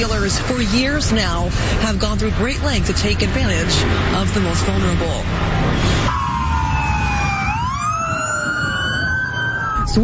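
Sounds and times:
speech: 0.0 - 6.2
steady traffic rumble: 0.0 - 10.0
police siren wailing: 5.6 - 10.0.

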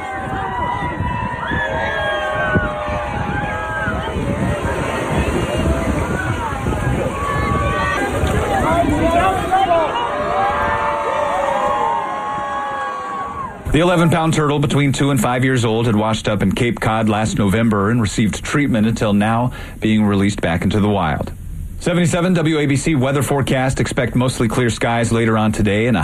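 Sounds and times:
outdoor crowd of kids and onlookers cheering and shouting at Coney Island: 0.0 - 14.2
wind rumble on the microphone: 0.0 - 15.0
speech: 13.8 - 26.0.

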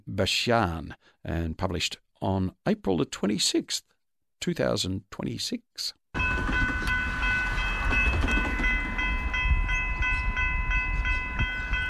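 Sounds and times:
speech: 0.0 - 6.6
train rumbling along the rails: 6.2 - 11.8.

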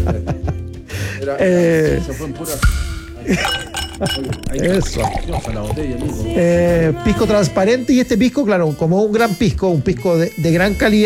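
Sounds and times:
speech: 1.3 - 11.0
ice cubes clinking in a glass: 3.3 - 6.3.

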